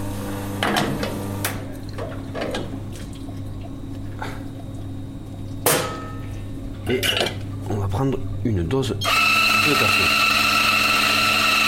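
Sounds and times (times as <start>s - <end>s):
low espresso machine hum: 0.0s - 11.6s
water running from an espresso machine rinsing a portafilter: 0.1s - 9.0s
speech: 8.0s - 10.3s.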